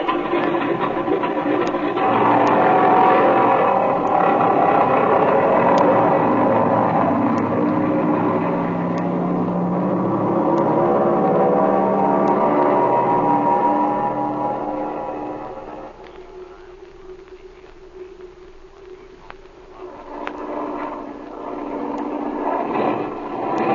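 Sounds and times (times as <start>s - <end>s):
loud airplane engine droning and misfiring: 0.0s - 23.7s.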